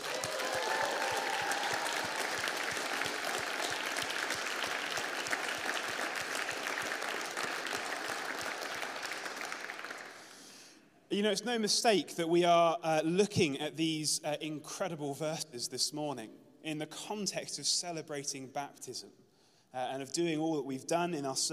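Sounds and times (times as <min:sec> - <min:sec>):
people cheering: 0:00.0 - 0:10.2
large crowd clapping: 0:00.0 - 0:10.4
speech: 0:11.1 - 0:21.5.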